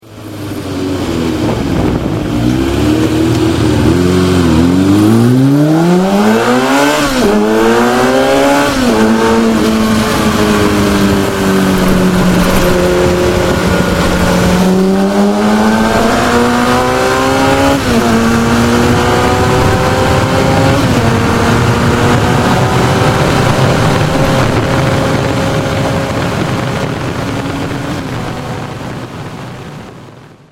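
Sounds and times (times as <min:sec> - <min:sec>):
Yamaha XJ6 motorcycle engine: 0:00.0 - 0:30.5.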